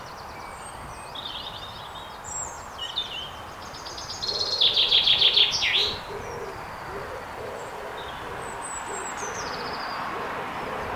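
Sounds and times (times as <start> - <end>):
common chaffinch singing: 0.0 - 10.9.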